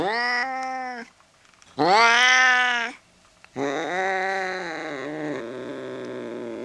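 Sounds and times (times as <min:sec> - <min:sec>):
cat yowling angrily: 0:00.0 - 0:01.1, 0:01.8 - 0:03.0, 0:03.6 - 0:06.6.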